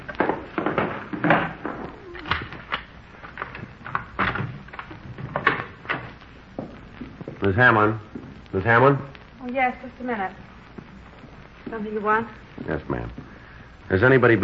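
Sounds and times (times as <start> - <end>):
objects moved away from a door with clattering bumps and scrapes: 0.0 - 7.4
speech: 7.5 - 10.4, 11.7 - 13.3, 13.9 - 14.4.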